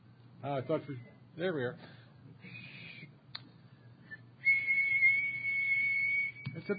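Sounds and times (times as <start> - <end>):
speech: 0.4 - 2.0, 6.6 - 6.7
person whistling a steady 2600 hertz telephone tone: 4.1 - 6.7.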